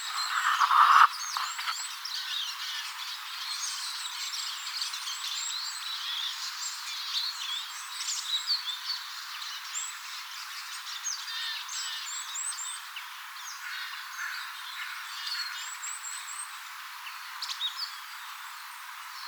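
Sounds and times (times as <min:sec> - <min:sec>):
siskin flock calls with thin high twittering notes and whistles: 0:00.0 - 0:01.8
steady background noise: 0:00.0 - 0:19.2.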